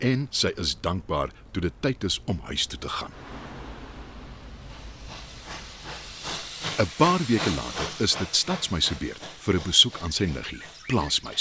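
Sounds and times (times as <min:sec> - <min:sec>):
speech: 0:00.0 - 0:03.3, 0:06.8 - 0:11.3
steam train hissing as it arrives: 0:02.9 - 0:11.3.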